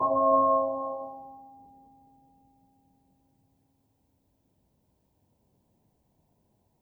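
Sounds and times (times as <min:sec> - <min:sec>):
bell hum prime tierce quint and nominal partials: 0:00.0 - 0:01.3.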